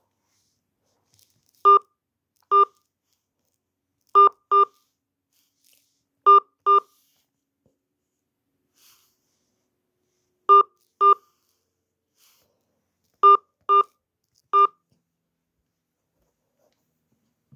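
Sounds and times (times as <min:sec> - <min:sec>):
touch-tone keypad beeps entering an account number on an automated phone payment line: 0:01.7 - 0:01.9, 0:02.5 - 0:02.8, 0:04.2 - 0:04.7, 0:06.3 - 0:06.9, 0:10.5 - 0:11.2, 0:13.2 - 0:13.9, 0:14.5 - 0:14.8.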